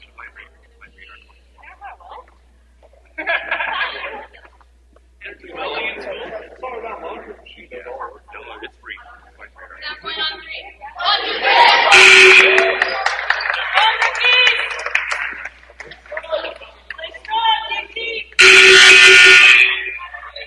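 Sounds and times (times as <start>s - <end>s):
laughter: 3.0s - 4.6s, 5.3s - 9.4s, 11.0s - 14.1s, 14.7s - 17.0s
packed arena crowd cheering and chanting for their team: 11.0s - 14.7s
blaring horn: 11.8s - 12.9s, 18.4s - 20.2s.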